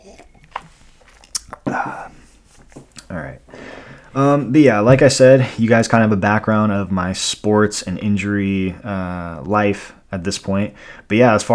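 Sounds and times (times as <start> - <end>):
wet mouth clicks: 0.0 - 2.1
person slurping and swallowing water: 0.0 - 2.3
speech: 4.2 - 11.5.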